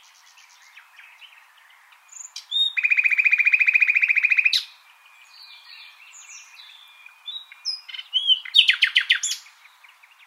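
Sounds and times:
common nightingale Luscinia megarhynchos singing: 0:00.0 - 0:10.2.

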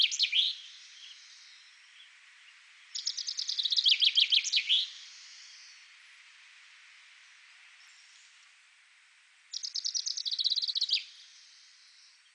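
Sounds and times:
common chaffinch Fringilla coelebs singing: 0:00.0 - 0:02.2, 0:02.8 - 0:05.8, 0:09.5 - 0:11.7.

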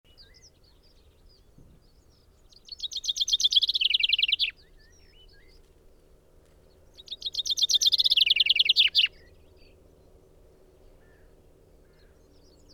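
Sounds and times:
common chaffinch Fringilla coelebs singing a cascading trill: 0:02.5 - 0:05.6, 0:07.0 - 0:09.3
faint bird twitters: 0:02.6 - 0:04.5, 0:07.0 - 0:09.1.

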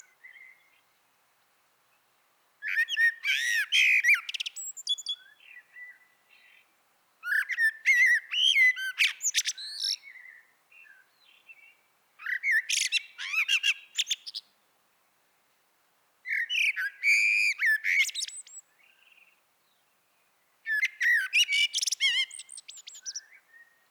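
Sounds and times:
Eurasian blackbird Turdus merula singing warbled phrases with scratchy twittering: 0:02.6 - 0:14.4, 0:16.3 - 0:19.8, 0:20.7 - 0:23.8.

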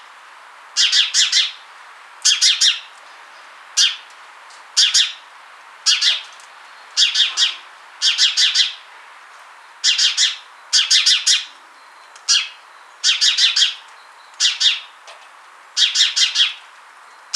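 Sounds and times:
house sparrow chirping, Passer domesticus: 0:00.8 - 0:01.6, 0:02.3 - 0:02.9, 0:03.8 - 0:04.0, 0:04.8 - 0:05.2, 0:05.9 - 0:08.8, 0:09.7 - 0:15.0, 0:15.8 - 0:17.3.

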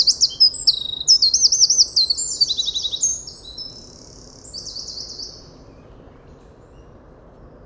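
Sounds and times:
Eurasian wren Troglodytes troglodytes singing: 0:00.0 - 0:05.5.

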